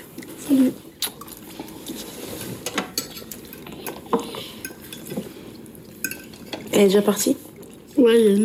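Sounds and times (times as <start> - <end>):
speech: 0.5 - 0.9, 6.8 - 8.4
utensil scraping and clinking against a pot while stirring pasta: 1.2 - 5.4
dishes tapping in a home kitchen in a Paris suburb: 2.4 - 5.3, 6.0 - 6.8.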